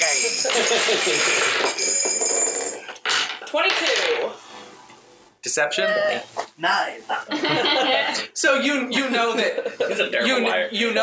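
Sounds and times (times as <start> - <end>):
dice rolled on a hard table: 0.2 - 4.3
laughter: 0.4 - 1.4, 7.1 - 8.3, 9.0 - 10.5
speech: 0.6 - 1.9, 3.5 - 4.4, 5.4 - 11.0.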